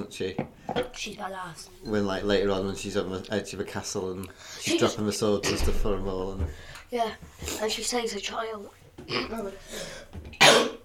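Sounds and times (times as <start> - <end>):
speech: 0.0 - 10.8
person coughing: 9.1 - 9.5, 10.4 - 10.8.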